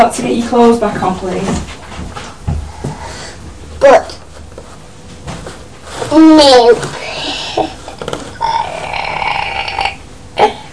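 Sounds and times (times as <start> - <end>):
speech: 0.0 - 2.2, 3.8 - 4.2, 6.1 - 7.8
person burping: 8.4 - 10.7.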